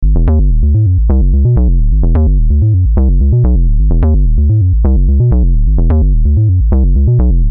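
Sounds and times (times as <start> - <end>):
synth bass: 0.0 - 7.5.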